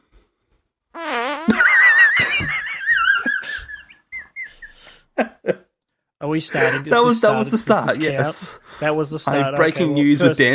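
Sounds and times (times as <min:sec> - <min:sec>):
loud drawn-out buzzy fart: 0:01.0 - 0:01.9
laughter: 0:01.5 - 0:05.7
speech: 0:06.3 - 0:10.5.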